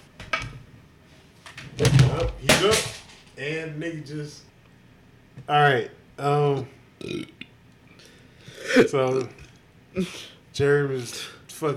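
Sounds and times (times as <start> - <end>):
speech: 1.8 - 4.5, 5.5 - 7.3, 8.8 - 9.4, 10.0 - 11.7
man burping: 7.0 - 7.5, 8.6 - 10.2.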